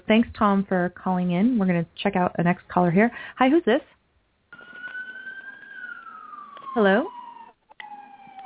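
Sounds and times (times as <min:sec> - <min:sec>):
speech: 0:00.1 - 0:04.0, 0:06.8 - 0:07.2
emergency vehicle siren wailing: 0:04.5 - 0:08.4.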